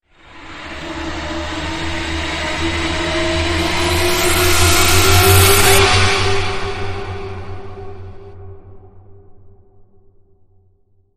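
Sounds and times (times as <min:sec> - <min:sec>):
sprint surge riser: 0:00.4 - 0:08.3.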